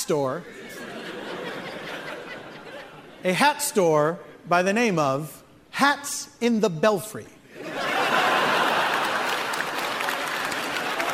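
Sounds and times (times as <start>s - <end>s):
speech: 0.1s - 0.6s, 3.2s - 7.4s
laughter: 0.4s - 3.3s, 7.5s - 11.1s
crowd applauding: 7.8s - 11.1s.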